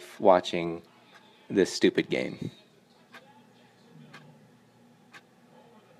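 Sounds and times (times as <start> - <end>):
clock ticking underneath a TV: 0.0 - 5.9
steady low hum: 0.0 - 5.9
speech: 0.2 - 0.9, 1.5 - 2.6.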